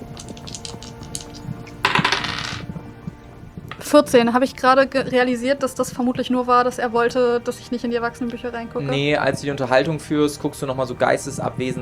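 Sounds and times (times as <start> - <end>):
dice rolled for a perception check clattering across a hard tabletop: 0.4 - 2.6
speech: 3.9 - 11.8.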